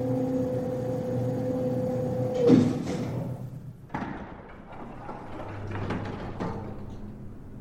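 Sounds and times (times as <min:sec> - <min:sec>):
elevator mechanical hum: 0:00.0 - 0:07.5
elevator sliding door rumbling open with soft clattering: 0:00.2 - 0:07.5
elevator car stopping thud: 0:02.2 - 0:07.1.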